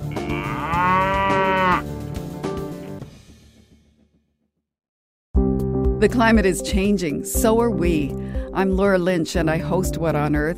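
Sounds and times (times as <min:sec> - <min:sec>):
cow mooing: 0:00.0 - 0:01.8
speech: 0:06.0 - 0:10.5.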